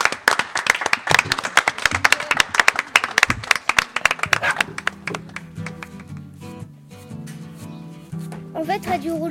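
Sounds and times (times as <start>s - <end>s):
small audience clapping enthusiastically: 0.0s - 6.3s
soft music with a steady low tone: 4.8s - 9.3s
speech: 8.6s - 9.3s.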